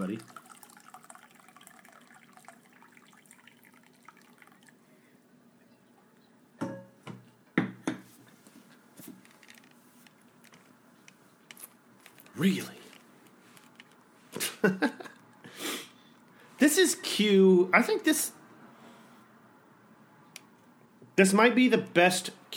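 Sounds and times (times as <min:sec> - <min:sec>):
tea pouring into a cup: 0:00.0 - 0:05.1
low steady hum: 0:00.0 - 0:21.2
speech: 0:00.1 - 0:00.4, 0:12.4 - 0:12.8, 0:16.6 - 0:18.4, 0:21.2 - 0:22.5
laughter: 0:14.4 - 0:15.2.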